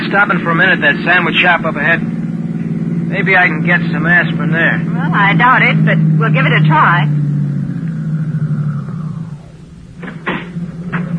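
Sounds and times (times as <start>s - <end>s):
car engine idling: 0.0s - 11.1s
speech: 0.1s - 2.2s, 3.1s - 7.2s
short sharp clunks: 10.0s - 11.1s.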